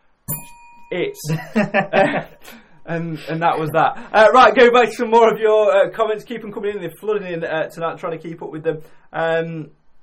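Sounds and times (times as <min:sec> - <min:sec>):
single bright bell rung sharply to cover swearing: 0:00.3 - 0:02.6
speech: 0:00.5 - 0:09.8
voices chuckling: 0:01.2 - 0:04.0.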